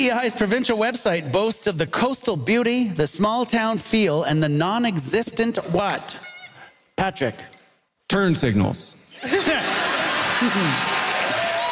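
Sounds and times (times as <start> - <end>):
speech: 0.0 - 6.3, 7.0 - 10.9
audience laughter and chuckling: 9.2 - 11.4
live audience applauding: 9.4 - 11.6.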